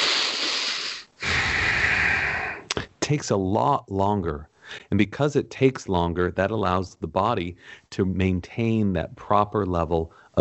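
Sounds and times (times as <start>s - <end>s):
slow breath in through the nose: 0.0s - 2.7s, 7.6s - 7.9s
speech: 3.1s - 10.3s.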